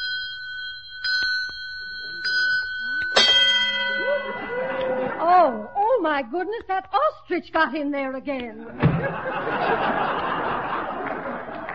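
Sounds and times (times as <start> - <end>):
bell of an automatic egg-counting device on a farm: 0.0 - 6.0
laughter: 3.8 - 5.6, 8.6 - 11.7
busier louder jumble with voices: 3.8 - 6.3
speech: 5.4 - 10.4.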